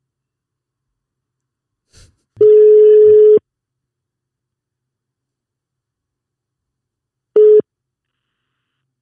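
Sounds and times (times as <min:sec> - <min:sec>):
telephone ringback tone: 0:02.4 - 0:03.4, 0:07.4 - 0:07.6.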